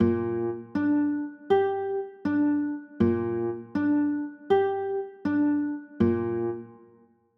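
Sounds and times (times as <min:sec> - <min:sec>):
B flat 9 chords: 0:00.0 - 0:06.9.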